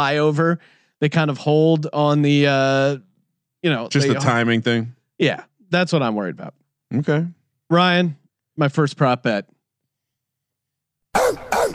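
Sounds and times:
speech: 0.0 - 9.6
dog barking: 11.2 - 11.7.

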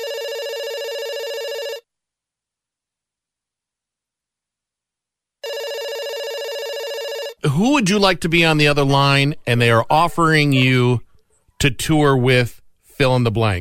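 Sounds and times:
telephone ringing: 0.0 - 1.9, 5.4 - 7.4
speech: 7.4 - 11.0, 11.6 - 13.5.

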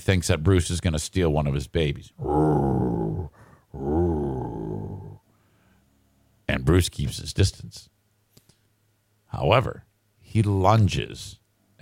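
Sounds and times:
speech: 0.0 - 2.8, 6.7 - 8.0, 9.3 - 11.8
person imitating a dog growling: 2.2 - 5.2.

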